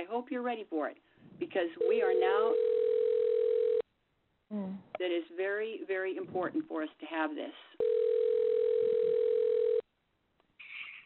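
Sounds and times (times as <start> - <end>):
speech: 0.1 - 2.8, 4.5 - 8.0
telephone ringing through a phone line: 1.8 - 3.8, 7.8 - 9.8.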